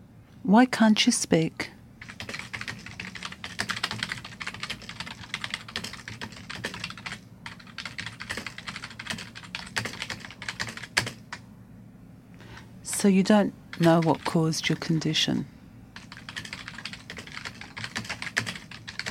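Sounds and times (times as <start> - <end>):
low hum: 0.0 - 19.0
speech: 0.4 - 1.8, 13.0 - 15.5
rapid typing on a computer keyboard: 2.0 - 11.4, 13.7 - 14.9, 16.0 - 19.0.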